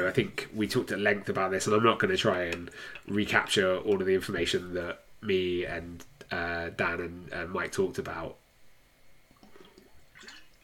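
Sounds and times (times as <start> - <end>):
speech: 0.1 - 8.4
sipping water: 2.4 - 3.2, 9.3 - 10.6.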